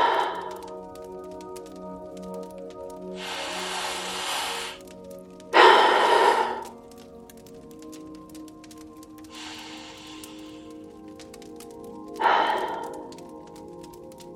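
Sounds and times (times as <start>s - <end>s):
deep breaths: 0.0s - 0.8s, 3.1s - 5.0s, 5.6s - 7.0s, 9.3s - 11.0s, 12.0s - 13.5s.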